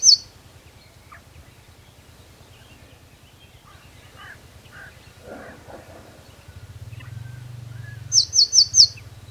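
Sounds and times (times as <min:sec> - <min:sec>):
low steady hum: 0:00.2 - 0:09.2
Eurasian blue tit Cyanistes caeruleus giving high thin notes: 0:04.7 - 0:09.2.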